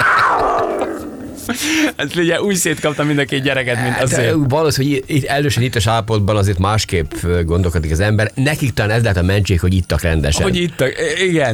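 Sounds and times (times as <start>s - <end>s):
tiger roaring: 0.0s - 1.5s
speech: 1.8s - 11.5s.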